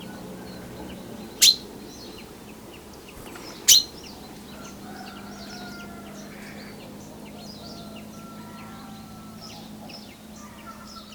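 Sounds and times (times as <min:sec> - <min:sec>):
faint bird twittering: 0:00.0 - 0:11.1
common chaffinch sharp bright call: 0:01.4 - 0:01.7.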